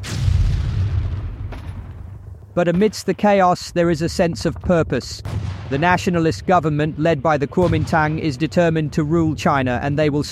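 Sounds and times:
sharp crack of gunfire: 0:00.0 - 0:02.8, 0:05.2 - 0:06.2
deep continuous rumbling booms of battle: 0:00.0 - 0:10.2
speech: 0:02.6 - 0:10.2.

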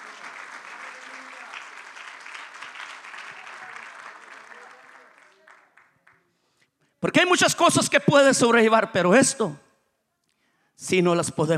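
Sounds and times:
audience applauding: 0:00.0 - 0:06.3
speech: 0:07.0 - 0:09.6, 0:10.9 - 0:11.5.

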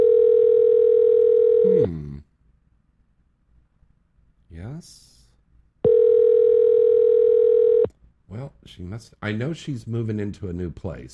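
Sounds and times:
telephone call ringing tone: 0:00.0 - 0:01.8, 0:05.8 - 0:07.9
speech: 0:08.7 - 0:11.1.

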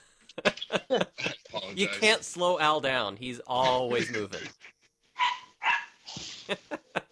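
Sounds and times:
laughter: 0:00.4 - 0:02.2, 0:03.6 - 0:04.7, 0:06.2 - 0:07.1
speech: 0:00.4 - 0:04.6
small dog yipping and barking: 0:05.2 - 0:06.0.

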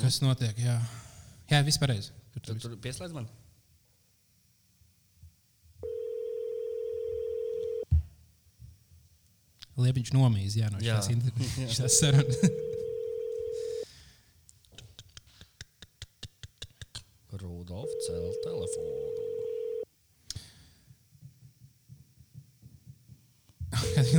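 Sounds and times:
speech: 0:00.0 - 0:03.4, 0:09.8 - 0:12.7, 0:17.4 - 0:19.2, 0:23.7 - 0:24.1
phone line ringback tones through the earpiece: 0:05.8 - 0:07.8, 0:11.7 - 0:13.8, 0:17.8 - 0:19.8, 0:23.8 - 0:24.1
laughter: 0:11.0 - 0:13.0, 0:23.8 - 0:24.1.

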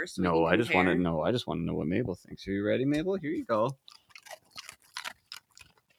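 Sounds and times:
speech: 0:00.0 - 0:04.0
female pet crunching and chewing a treat: 0:03.0 - 0:05.9.

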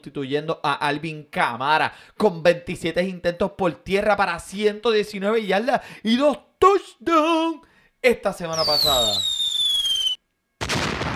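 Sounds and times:
speech: 0:00.0 - 0:09.4
firework rocket whistling: 0:08.6 - 0:10.2
firework bursting into a crackling blast: 0:08.6 - 0:11.1.

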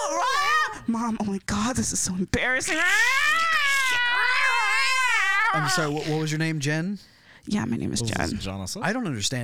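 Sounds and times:
speech: 0:00.9 - 0:03.5, 0:05.5 - 0:09.4
person imitating a dominant cat's yowl: 0:02.6 - 0:06.3.

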